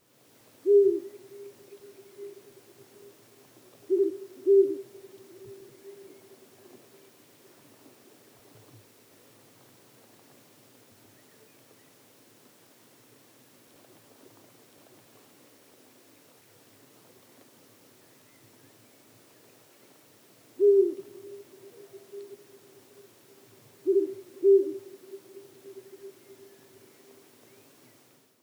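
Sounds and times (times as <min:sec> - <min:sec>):
Ural owl calling: 0:00.6 - 0:03.2, 0:03.9 - 0:06.9, 0:20.6 - 0:27.8.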